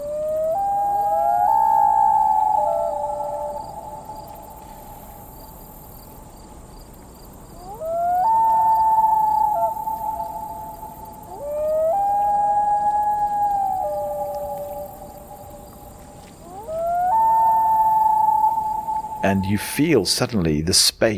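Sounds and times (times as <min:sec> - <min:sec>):
common loon calling in long haunting wails: 0:00.0 - 0:04.7, 0:07.6 - 0:19.7
speech: 0:19.3 - 0:21.1.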